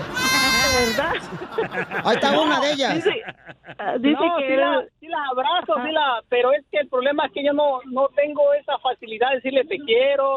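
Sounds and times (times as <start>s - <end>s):
goat bleating: 0.0s - 1.1s
laughter: 0.0s - 4.2s
speech: 0.8s - 10.3s.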